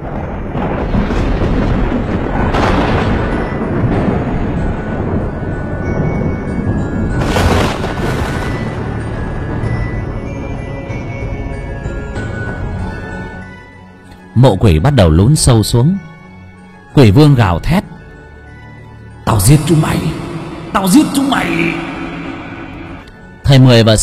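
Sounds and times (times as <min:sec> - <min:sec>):
thunder rolling from lightning bolts striking down: 0:00.0 - 0:11.2, 0:19.2 - 0:23.4
speech: 0:14.4 - 0:16.1, 0:17.0 - 0:17.9, 0:19.4 - 0:21.8, 0:23.5 - 0:24.0.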